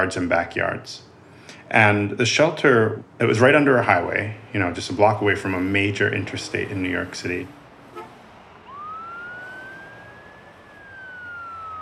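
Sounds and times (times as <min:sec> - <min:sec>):
speech: 0:00.0 - 0:01.1, 0:01.7 - 0:07.6
steady rumble of city traffic: 0:00.0 - 0:11.8
emergency siren wailing: 0:03.0 - 0:11.8.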